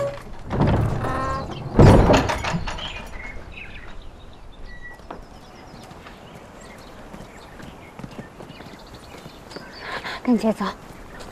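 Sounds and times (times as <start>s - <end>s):
door shutting with a heavy thump: 0.5s - 3.1s
faint shuffling: 2.7s - 11.3s
speech: 10.3s - 10.9s.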